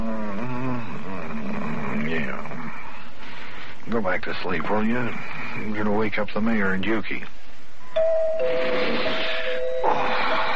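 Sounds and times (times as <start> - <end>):
hiss: 0.0 - 10.5
speech: 3.9 - 7.4
doorbell chiming ding-dong: 8.0 - 10.1.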